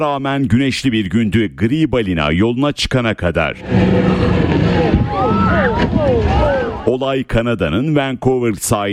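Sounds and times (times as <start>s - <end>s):
speech: 0.0s - 8.9s
wind: 0.0s - 8.9s
jet ski engine roaring across the sea off the Vancouver coast in Canada: 3.5s - 6.9s
sea water noise: 3.6s - 7.0s.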